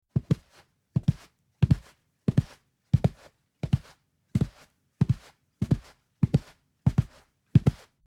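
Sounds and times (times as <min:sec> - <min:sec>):
footstep on carpet: 0:00.2 - 0:07.8.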